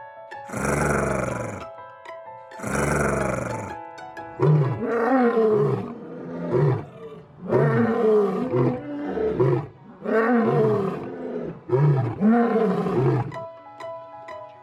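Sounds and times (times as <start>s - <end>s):
speech: 0.5s - 0.8s
lion roaring: 0.5s - 1.7s, 2.6s - 3.8s, 4.4s - 13.4s.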